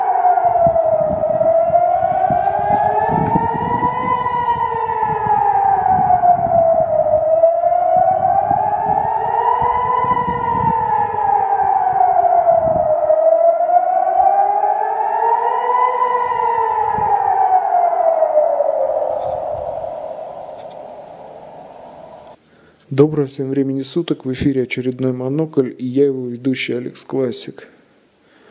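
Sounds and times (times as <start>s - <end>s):
low rumbling undercurrent: 0.2s - 22.3s
speech: 23.0s - 27.7s.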